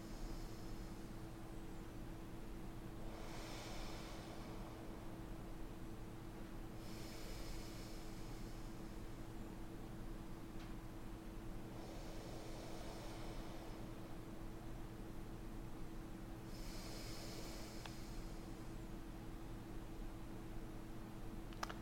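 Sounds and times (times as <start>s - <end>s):
slow calm breathing: 0.0s - 19.0s
steady low hum: 0.0s - 21.8s.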